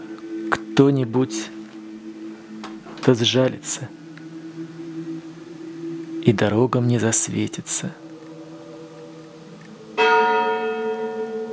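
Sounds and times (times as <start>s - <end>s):
speech: 0.8s - 1.6s, 3.1s - 4.0s, 6.3s - 8.1s
church bell striking with a deep rich tone: 10.0s - 11.5s.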